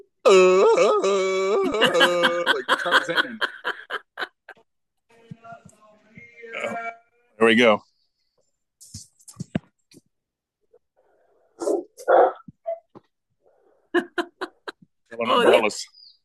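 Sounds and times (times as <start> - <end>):
speech: 0.3 - 3.6, 7.5 - 7.9
laughter: 1.4 - 4.6, 13.9 - 15.4
dog barking: 11.6 - 12.5.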